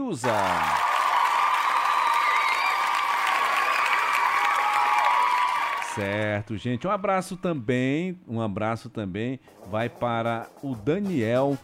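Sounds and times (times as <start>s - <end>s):
speech: 0.1s - 0.9s, 6.0s - 11.6s
crowd applause with many hands clapping: 0.2s - 6.4s.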